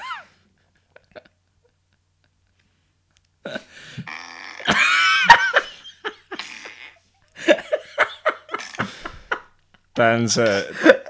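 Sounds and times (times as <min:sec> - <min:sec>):
comedic fart sound effects from a collection: 0:04.1 - 0:05.0, 0:06.4 - 0:07.0, 0:08.6 - 0:08.9
laughter: 0:04.6 - 0:06.8, 0:07.4 - 0:09.6, 0:10.4 - 0:11.0.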